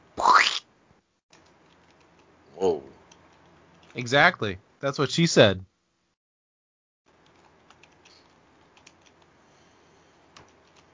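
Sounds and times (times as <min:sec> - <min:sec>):
low hum: 0:00.0 - 0:06.2, 0:07.1 - 0:10.9
typing on a computer keyboard: 0:01.3 - 0:02.3, 0:07.1 - 0:09.3, 0:10.3 - 0:10.9
speech: 0:04.0 - 0:05.7.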